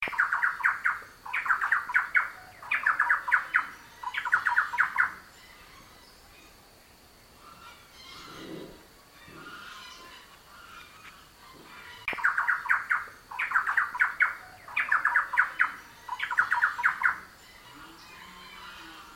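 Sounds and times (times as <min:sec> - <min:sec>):
Campylorhynchus turdinus calling: 0:00.0 - 0:06.6, 0:07.3 - 0:19.1.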